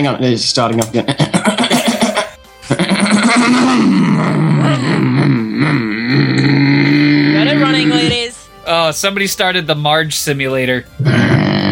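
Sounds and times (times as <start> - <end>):
speech: 0.0 - 1.8, 8.9 - 11.4
horse whinnying: 2.7 - 8.2.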